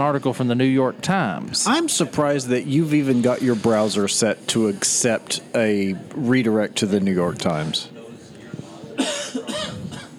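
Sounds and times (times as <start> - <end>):
speech: 0.0 - 8.0
harsh coughs: 9.0 - 10.1.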